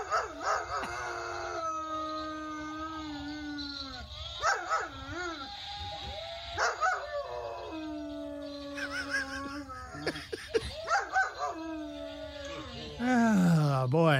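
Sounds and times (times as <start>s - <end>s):
real dog howling and barking at a robotic dog: 0.0s - 13.1s
laughter: 8.8s - 11.1s.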